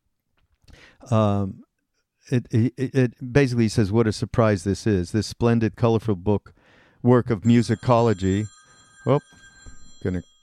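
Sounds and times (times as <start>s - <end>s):
speech: 0.9s - 9.4s, 10.0s - 10.3s
phone ringing with short electronic bursts: 7.4s - 10.4s.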